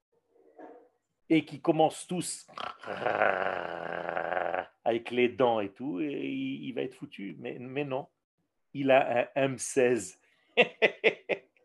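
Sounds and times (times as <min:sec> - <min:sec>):
speech: 0:01.3 - 0:03.8, 0:04.9 - 0:11.1
person imitating a wolf's snarling growl: 0:02.5 - 0:04.8
laughter: 0:10.6 - 0:11.4.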